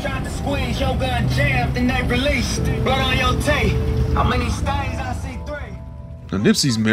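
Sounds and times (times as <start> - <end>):
rap music blaring from a motorcycle: 0.0 - 6.0
motorcycle engine rumble at a busy intersection: 0.0 - 6.3
speech: 0.4 - 5.0, 6.3 - 6.9.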